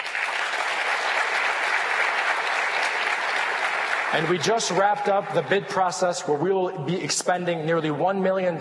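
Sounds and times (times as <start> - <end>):
audience applause during a speech: 0.0 - 5.2
speech: 4.1 - 8.6.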